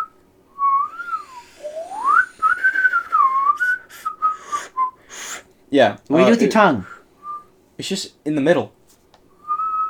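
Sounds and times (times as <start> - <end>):
person whistling a wavering tune: 0.0 - 5.0, 7.2 - 7.5, 9.4 - 9.8
speech: 5.7 - 6.9, 7.8 - 8.8.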